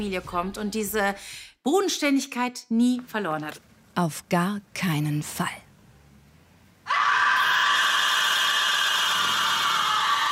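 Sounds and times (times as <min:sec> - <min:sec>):
speech: 0:00.0 - 0:05.6
woman screaming after finding a dead body: 0:06.9 - 0:10.3.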